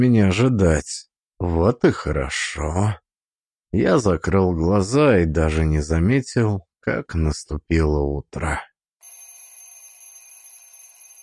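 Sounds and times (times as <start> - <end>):
speech: 0.0 - 3.0, 3.7 - 8.7
rattling alarm clock ringing in the morning: 9.0 - 11.2.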